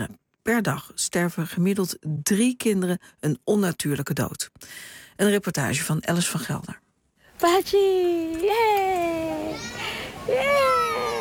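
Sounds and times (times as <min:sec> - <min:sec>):
speech: 0:00.0 - 0:06.8, 0:07.4 - 0:10.8
toddler boy's high sing-song vocalizations at a small playground: 0:09.2 - 0:11.1.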